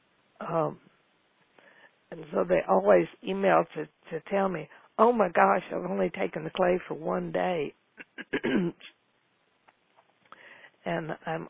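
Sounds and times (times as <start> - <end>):
speech: 0.4 - 0.9, 2.1 - 9.0, 10.8 - 11.4
person clearing throat: 8.0 - 8.9.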